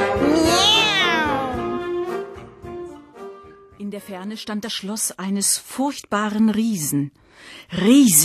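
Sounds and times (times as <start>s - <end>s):
cat meowing: 0.2s - 1.9s
speech: 4.1s - 8.2s.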